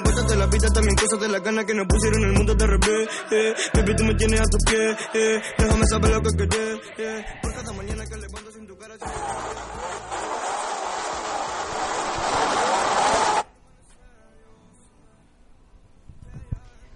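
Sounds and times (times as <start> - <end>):
speech: 0.3 - 9.4
cars and motorcycles revving and accelerating: 9.1 - 13.4.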